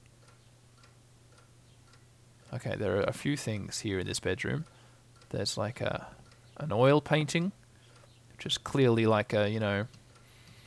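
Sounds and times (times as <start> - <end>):
clock ticking with soft even clicks: 0.0 - 2.1, 4.6 - 6.4
faint low electrical hum: 0.0 - 10.6
speech: 2.6 - 7.6, 8.4 - 10.0.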